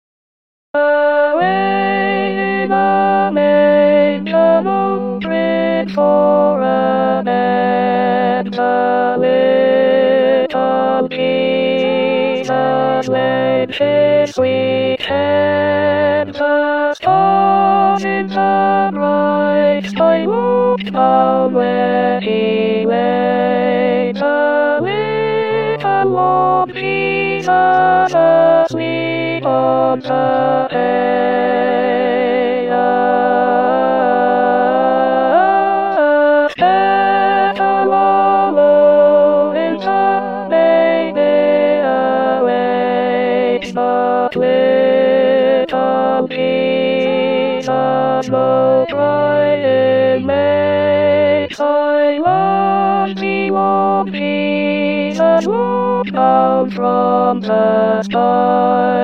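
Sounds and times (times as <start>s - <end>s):
alto singing a Christmas carol: 0.8s - 59.0s.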